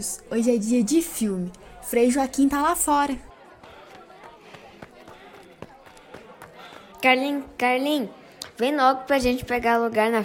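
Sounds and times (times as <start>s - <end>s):
speech: 0.0s - 3.3s, 7.0s - 10.2s
murmuring voices: 0.0s - 8.6s
children running footsteps across the floor: 2.5s - 7.6s.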